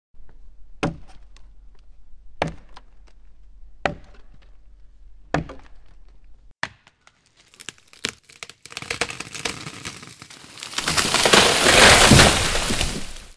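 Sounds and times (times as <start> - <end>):
axe chopping a tree: 0.8 - 1.4, 2.4 - 3.1, 3.8 - 4.5, 5.3 - 6.0, 6.6 - 7.1, 10.6 - 13.3
tree falling: 7.4 - 13.3.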